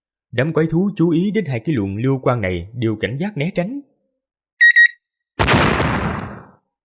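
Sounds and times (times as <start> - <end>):
speech: 0.3 - 3.9
time bomb clock timers giving quick high-pitched beeps: 4.6 - 5.0
loud explosion of time bombs with a rumbling tail: 5.4 - 6.6.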